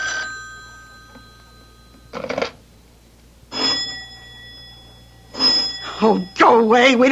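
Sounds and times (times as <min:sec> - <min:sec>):
old-fashioned telephone bell ringing: 0:00.0 - 0:02.8, 0:03.5 - 0:06.8
speech: 0:06.0 - 0:07.1.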